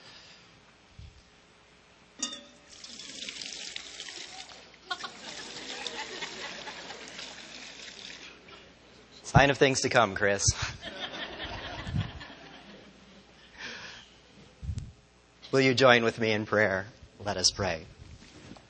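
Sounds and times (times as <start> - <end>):
water poured into a baptismal font during a baptism at a United Methodist church: 2.7 - 8.4
laughter: 4.9 - 7.7, 10.6 - 13.1
speech: 9.3 - 10.7, 15.6 - 18.0.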